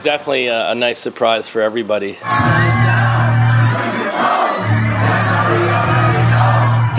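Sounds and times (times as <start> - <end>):
speech: 0.0 - 3.0
packed crowd screaming and whooping at a club: 2.2 - 6.9
people shouting: 2.2 - 6.9.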